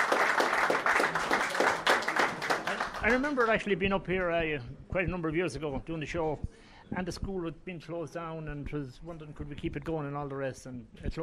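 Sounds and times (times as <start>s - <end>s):
audience applause: 0.0s - 3.6s
speech: 3.0s - 11.2s.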